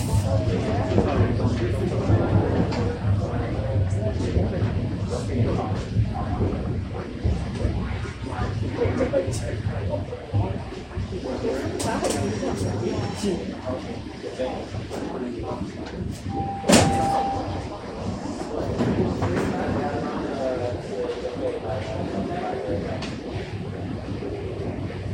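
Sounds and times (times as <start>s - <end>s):
subway train rumbling and slowing into Davisville Station: 0.0s - 25.1s
voices on a subway train: 0.0s - 25.1s
subway train doors sliding open: 16.1s - 17.8s
subway door tone: 16.3s - 17.7s.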